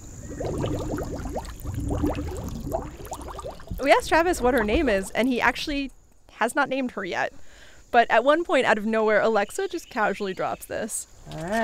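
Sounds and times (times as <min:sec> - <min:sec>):
snapping turtle blowing bubbles underwater: 0:00.0 - 0:05.2
constant low hum: 0:00.0 - 0:09.8
speech: 0:03.8 - 0:11.6.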